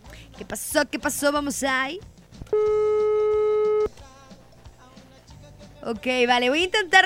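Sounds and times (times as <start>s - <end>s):
speech: 0.4s - 2.9s, 5.8s - 7.0s
telephone busy tone on a call that won't connect: 2.5s - 3.9s.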